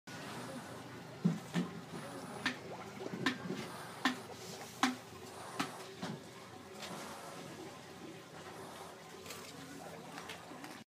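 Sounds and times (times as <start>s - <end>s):
pig breathing at slaughter: 0.1s - 1.1s, 1.8s - 9.5s.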